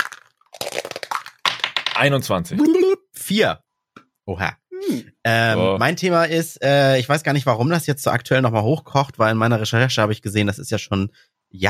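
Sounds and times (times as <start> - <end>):
dice rolled rattling across a hard surface: 0.0 - 2.1
speech: 2.0 - 3.6, 4.3 - 11.6.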